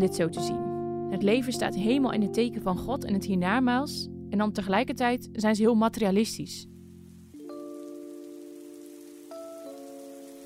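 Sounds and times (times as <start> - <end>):
speech: 0.0 - 6.7
steady rain pattering: 6.8 - 10.4.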